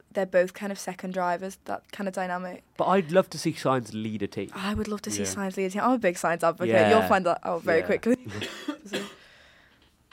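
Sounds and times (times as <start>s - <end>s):
speech: 0.2s - 9.1s
person coughing: 8.2s - 9.3s.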